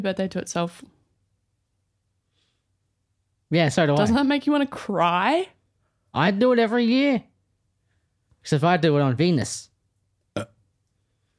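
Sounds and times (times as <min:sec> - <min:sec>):
speech: 0:00.0 - 0:01.0, 0:03.5 - 0:07.3, 0:08.4 - 0:09.7
short loud throaty burp: 0:10.4 - 0:10.6.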